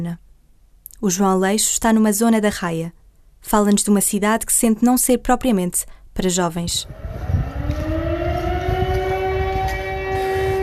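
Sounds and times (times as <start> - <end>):
speech: 0.0 - 0.3, 1.0 - 7.8
low rumbling background: 6.6 - 10.6
town siren wailing: 6.6 - 10.6.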